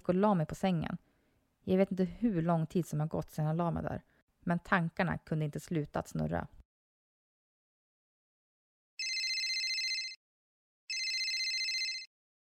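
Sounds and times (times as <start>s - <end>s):
speech: 0.0s - 6.6s
telephone ringing: 9.0s - 10.2s, 10.9s - 12.1s.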